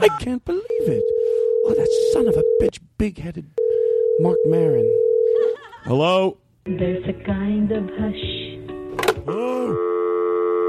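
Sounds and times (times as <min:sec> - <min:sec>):
speech: 0:00.0 - 0:08.6, 0:09.3 - 0:10.2
telephone line tone after a caller hangs up: 0:00.7 - 0:02.7, 0:03.6 - 0:05.5, 0:09.8 - 0:10.6.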